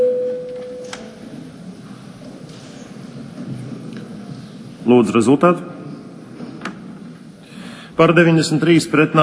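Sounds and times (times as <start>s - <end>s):
electronic voting bell signal tone in parliament before a vote: 0.0s - 0.9s
quiet murmur of room noise: 0.0s - 9.2s
speech: 4.9s - 5.8s, 8.0s - 9.2s.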